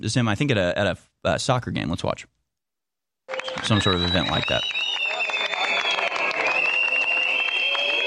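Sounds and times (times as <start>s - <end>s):
speech: 0.0s - 2.4s, 3.5s - 4.8s
shrill sustained whistles from a crowd: 3.3s - 8.0s
large crowd booing and jeering: 5.1s - 8.0s.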